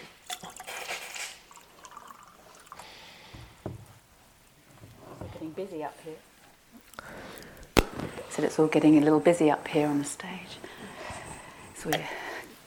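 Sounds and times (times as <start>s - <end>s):
water pouring into a glass: 0.2s - 2.9s
speech: 5.6s - 6.3s, 8.4s - 10.7s, 11.8s - 12.2s.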